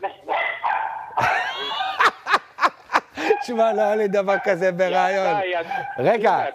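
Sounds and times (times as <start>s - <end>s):
Maltese dogs barking: 0.0s - 2.1s, 4.2s - 6.5s
laughter: 1.2s - 3.6s
speech: 3.5s - 6.5s.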